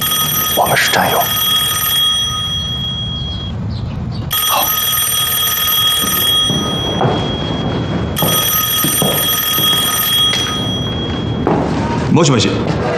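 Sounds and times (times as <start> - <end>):
telephone ringing with a bright electric bell: 0.0 - 3.6, 4.3 - 11.9
speech: 0.7 - 1.4, 12.2 - 12.9.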